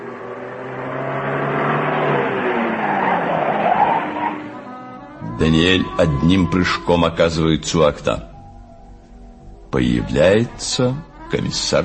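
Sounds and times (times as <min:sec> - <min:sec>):
car engine slowing and pulling up outside a house: 0:00.0 - 0:05.2
speech: 0:05.4 - 0:08.3, 0:09.7 - 0:11.8.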